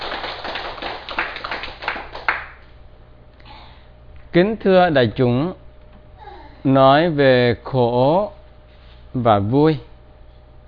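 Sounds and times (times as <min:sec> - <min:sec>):
audience applause at a Buddhist dharma talk: 0:00.0 - 0:02.6
speech: 0:04.4 - 0:05.6, 0:06.6 - 0:08.4, 0:09.1 - 0:09.9.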